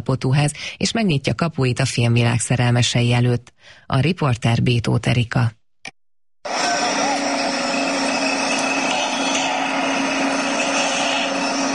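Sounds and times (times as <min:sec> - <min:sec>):
speech: 0:00.0 - 0:06.7
power tools whining at a half-finished house under construction in Miskolc, Hungary: 0:06.5 - 0:11.7.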